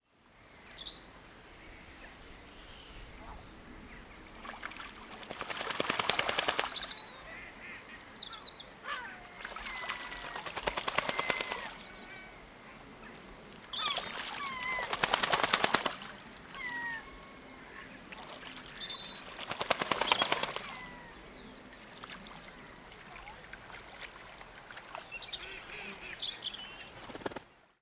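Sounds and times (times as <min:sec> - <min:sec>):
ducks washing in a pond: 0:04.2 - 0:07.4, 0:08.9 - 0:12.4, 0:13.8 - 0:27.7
seagulls calling in the background: 0:05.9 - 0:12.9, 0:13.7 - 0:21.5.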